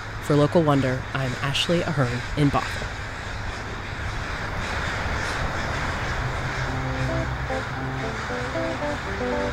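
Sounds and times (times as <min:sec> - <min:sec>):
speech: 0:00.3 - 0:03.0
crows cawing as they rise from a tennis court: 0:02.0 - 0:09.5
steady rushing hiss: 0:05.4 - 0:09.5.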